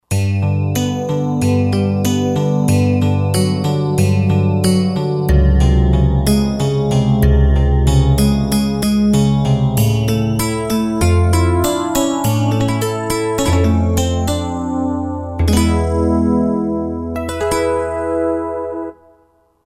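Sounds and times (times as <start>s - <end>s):
Crystal Guitar factory patch on Roland JD-990 synthesizer: 0.1s - 19.4s.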